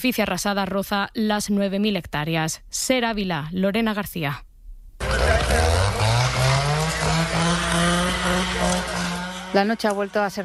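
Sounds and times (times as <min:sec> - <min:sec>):
speech: 0:00.0 - 0:04.5, 0:09.5 - 0:10.4
chainsaw starting and revving at a wildfire: 0:05.0 - 0:10.4.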